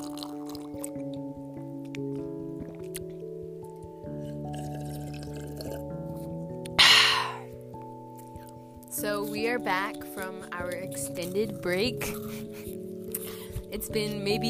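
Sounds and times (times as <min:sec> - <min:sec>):
person sipping and swallowing water: 0:00.0 - 0:01.3, 0:02.0 - 0:03.3, 0:04.1 - 0:07.6, 0:12.0 - 0:13.7
speech: 0:09.2 - 0:12.8, 0:13.7 - 0:14.4.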